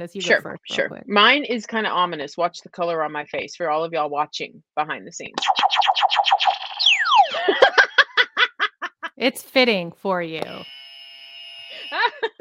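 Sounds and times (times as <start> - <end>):
speech: 0.0 - 6.7, 9.2 - 10.8
people laughing: 7.3 - 9.2, 11.7 - 12.3
game show buzzer: 10.4 - 12.2.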